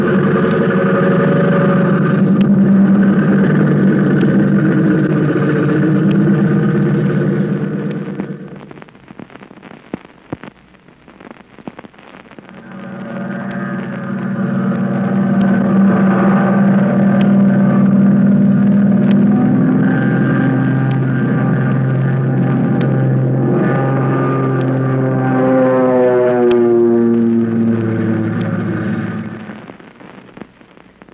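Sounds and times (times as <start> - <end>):
airplane engine roaring in flight: 0.0 - 8.7, 12.4 - 29.8.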